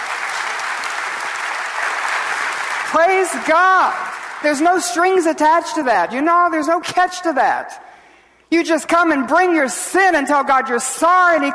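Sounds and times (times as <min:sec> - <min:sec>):
audience applauding during a sermon: 0:00.0 - 0:05.0
speech: 0:02.9 - 0:07.8, 0:08.5 - 0:11.5.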